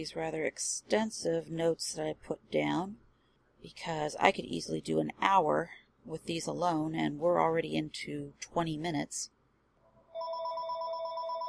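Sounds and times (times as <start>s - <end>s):
speech: 0.0s - 3.0s, 3.6s - 9.4s
phone with steady electronic ring tone: 10.1s - 11.4s.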